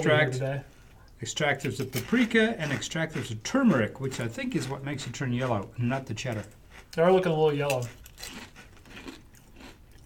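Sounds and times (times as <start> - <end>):
speech: 0.0 - 8.4
kettle potato chip being bitten and chewed: 7.6 - 10.0.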